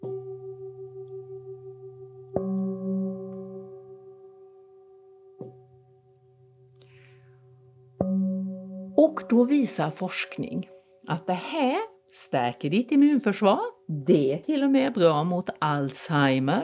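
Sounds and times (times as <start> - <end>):
singing bowls ringing two tones a perfect fifth apart: 8.0 - 11.2
speech: 9.0 - 16.6.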